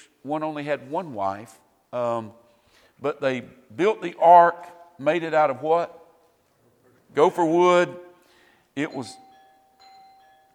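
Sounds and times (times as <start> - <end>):
quiet hiss: 0.0 - 10.5
speech: 0.2 - 2.4, 3.0 - 6.0, 7.1 - 8.1, 8.8 - 9.2
ding-dong chime: 8.9 - 10.5.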